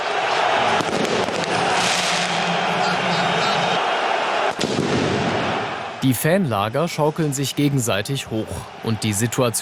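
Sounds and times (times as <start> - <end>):
football stadium crowd roaring: 0.0 - 9.6
firecrackers banging in a football stadium: 0.6 - 3.6, 4.5 - 5.6
speech: 6.0 - 9.6.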